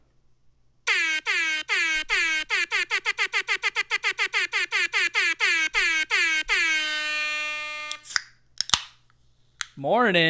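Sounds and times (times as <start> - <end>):
air horns blaring: 0.9 - 8.1
speech: 9.8 - 10.2.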